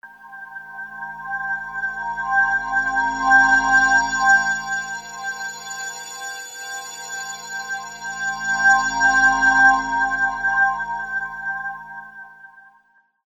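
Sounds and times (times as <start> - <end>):
ambient music: 0.2 - 12.4.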